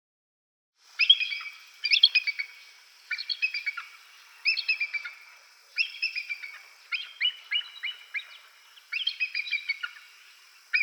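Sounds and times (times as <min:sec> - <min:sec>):
Bald eagle Haliaeetus leucocephalus calling: 0:01.0 - 0:05.2, 0:05.8 - 0:10.1.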